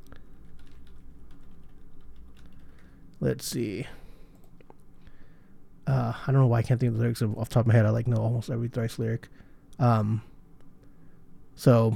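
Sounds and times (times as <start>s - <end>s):
steady low hum: 0.0s - 11.9s
typing on a computer keyboard: 0.4s - 2.9s
speech: 3.2s - 4.0s, 5.9s - 10.3s, 11.6s - 11.9s.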